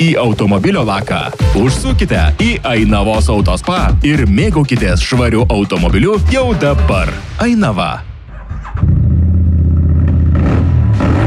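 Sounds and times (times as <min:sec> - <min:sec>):
speech: 0:00.0 - 0:08.1
motorcycle or scooter engine revving: 0:08.5 - 0:11.2.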